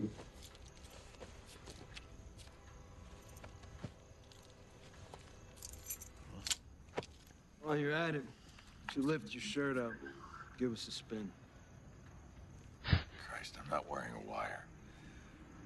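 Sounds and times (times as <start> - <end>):
car keys jangling: 5.5 - 6.6
speech: 7.7 - 8.4, 9.0 - 11.4, 13.6 - 14.7.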